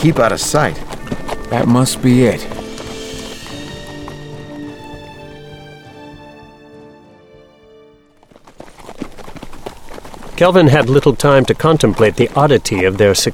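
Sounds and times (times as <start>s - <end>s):
speech: 0.0s - 2.6s, 10.4s - 13.3s
hooves of led horses clip-clopping on a hard road: 0.0s - 6.9s, 8.0s - 13.3s
sustained droning musical tones: 0.0s - 8.5s.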